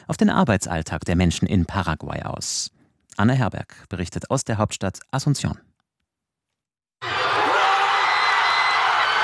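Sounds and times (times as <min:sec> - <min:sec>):
speech: 0:00.1 - 0:05.7
huge crowd of football fans cheering a goal: 0:07.0 - 0:09.2.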